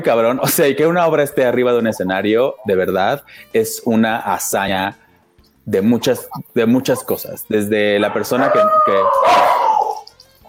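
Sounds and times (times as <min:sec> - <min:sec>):
speech: 0:00.0 - 0:05.0, 0:05.6 - 0:09.6
pet dogs barking: 0:07.9 - 0:10.1.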